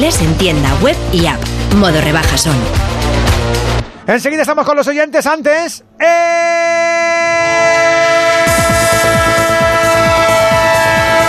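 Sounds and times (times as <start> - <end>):
speech: 0.0 - 6.7
train horn in a sports radio jingle: 6.9 - 11.2.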